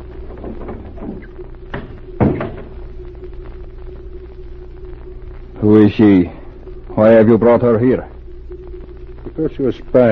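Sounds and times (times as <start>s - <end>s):
low steady room hum: 0.0s - 10.0s
door creaking open: 0.2s - 2.8s
speech: 5.6s - 6.4s, 7.0s - 8.1s, 9.4s - 10.0s.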